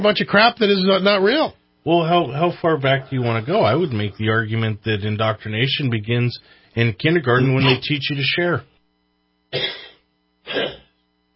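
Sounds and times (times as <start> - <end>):
speech: 0.0 - 8.7, 9.5 - 9.8, 10.5 - 10.8
short raspy coughs or throat clears: 7.6 - 7.8, 9.5 - 11.0.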